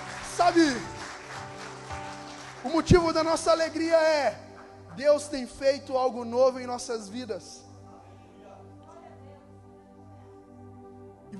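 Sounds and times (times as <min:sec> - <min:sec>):
church audience applauding: 0:00.0 - 0:05.4
speech: 0:00.4 - 0:01.0, 0:02.6 - 0:04.4, 0:05.0 - 0:07.6.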